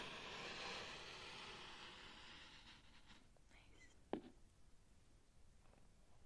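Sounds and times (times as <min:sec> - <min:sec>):
grainy hiss of small sand spheres being handled: 0:00.0 - 0:03.9
quiet low tone: 0:03.4 - 0:04.4.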